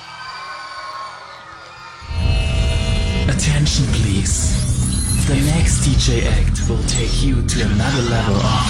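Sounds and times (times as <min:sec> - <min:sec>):
crowd cheering and whooping for a dance performance: 0:00.0 - 0:04.4
deep rumble of noise: 0:02.0 - 0:08.6
sustained high-pitched noise: 0:02.0 - 0:08.6
speech: 0:03.4 - 0:08.6.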